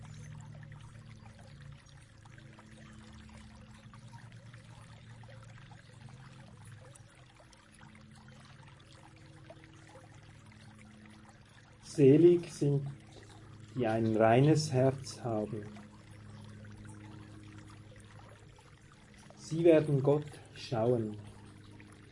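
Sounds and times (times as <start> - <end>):
water splashing and trickling: 0.0 - 22.1
speech: 12.0 - 13.0, 13.8 - 15.8, 19.5 - 21.3.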